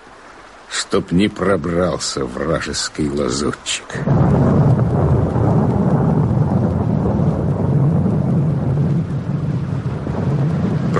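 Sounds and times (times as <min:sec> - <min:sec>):
steady heavy rain: 0:00.0 - 0:10.9
speech: 0:00.8 - 0:04.8
deep rolling thunder: 0:04.0 - 0:10.9.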